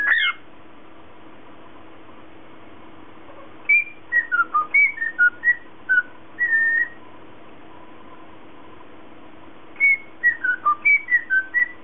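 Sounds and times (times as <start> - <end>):
lutino cockatiel whistling a melodic phrase: 0.0 - 0.4, 3.7 - 7.0, 9.8 - 11.8.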